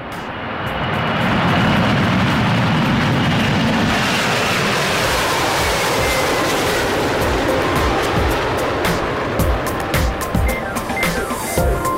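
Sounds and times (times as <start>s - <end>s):
aircraft engine roar of a plane taking off: 0.0s - 11.9s.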